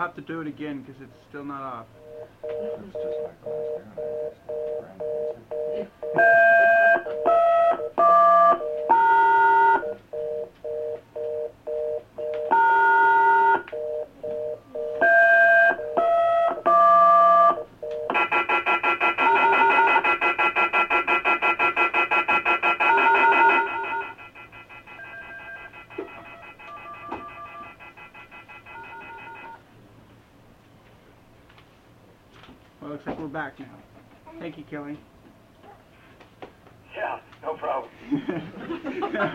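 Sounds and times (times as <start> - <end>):
speech: 0.0 - 7.9, 33.6 - 35.1
telephone keypad dialing tones: 2.0 - 29.6
laughter: 38.0 - 39.3.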